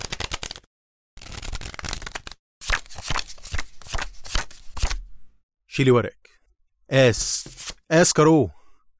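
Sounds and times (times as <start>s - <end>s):
playing cards being shuffled in quick riffling bursts: 1.2s - 5.0s, 7.4s - 7.8s
speech: 5.8s - 6.2s, 6.9s - 8.6s.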